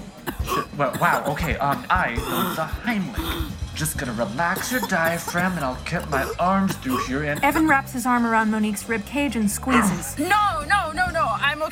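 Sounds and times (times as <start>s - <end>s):
person coughing and sputtering while choking on an ice cube: 0.2s - 3.6s, 4.4s - 7.9s
speech: 0.8s - 11.7s.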